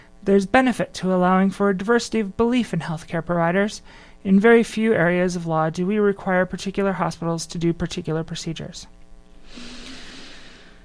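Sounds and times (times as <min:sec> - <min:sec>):
speech: 0:00.2 - 0:09.7
long heavy breath: 0:09.4 - 0:10.8.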